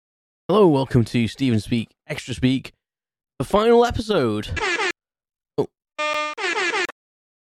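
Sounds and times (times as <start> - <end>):
speech: 0.5 - 2.8, 3.4 - 4.8, 5.6 - 6.3
malfunctioning air horn sound effect: 4.6 - 4.9, 6.0 - 7.0.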